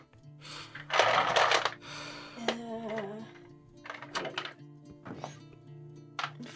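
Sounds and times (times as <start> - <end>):
dice tumbling and knocking against a hard surface: 0.7 - 1.8, 3.8 - 4.6, 6.2 - 6.4.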